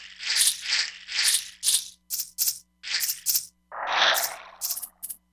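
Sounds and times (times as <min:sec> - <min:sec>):
E-mu Proteus-3 synthesizer stereo shake factory patch: 0:00.4 - 0:03.5, 0:04.1 - 0:05.2.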